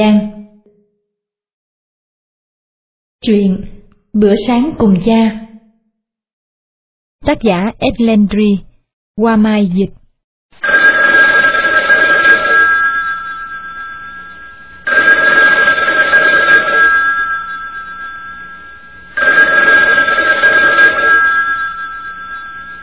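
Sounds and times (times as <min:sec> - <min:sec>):
speech: 0:00.0 - 0:00.3, 0:03.2 - 0:05.4, 0:07.2 - 0:10.7
telephone bell ringing: 0:10.6 - 0:22.8.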